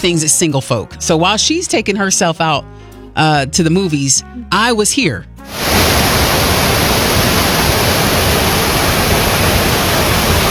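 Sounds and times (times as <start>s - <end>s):
speech: 0.0s - 6.0s
rushing water roar from a waterfall: 5.5s - 10.4s.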